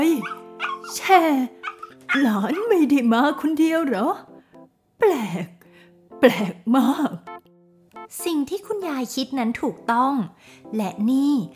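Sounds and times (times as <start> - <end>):
dog barking: 0.0 - 3.6
speech: 0.2 - 4.3, 5.0 - 5.6, 6.2 - 7.3, 8.1 - 11.5.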